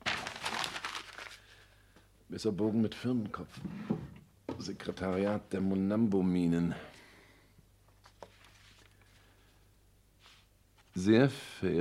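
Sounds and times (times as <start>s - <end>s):
paper being crumpled: 0.0s - 1.6s, 8.0s - 9.2s
speech: 2.3s - 4.0s, 4.6s - 7.0s, 11.0s - 11.7s.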